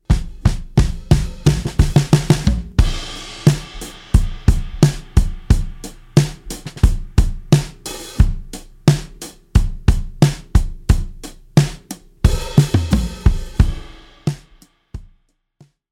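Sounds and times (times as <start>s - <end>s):
squashed acoustic drums: 0.0s - 15.2s.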